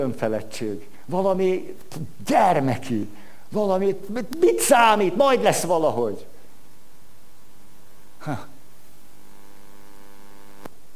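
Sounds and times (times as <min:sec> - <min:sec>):
speech: 0:00.0 - 0:06.3, 0:08.2 - 0:08.5
steady electrical hum from a sound system: 0:00.0 - 0:10.9.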